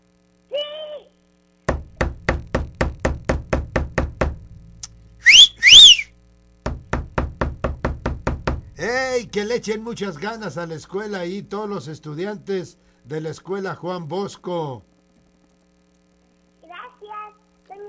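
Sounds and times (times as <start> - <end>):
knocking on a door: 1.7 - 4.8, 6.6 - 8.9
shrill rising-and-falling whistles: 5.2 - 6.1
speech: 8.8 - 14.9.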